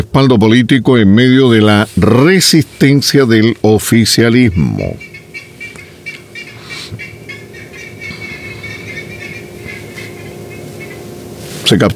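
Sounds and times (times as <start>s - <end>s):
speech: 0.2s - 5.1s, 11.7s - 11.9s
flock of small birds chattering and chirping: 2.5s - 11.2s.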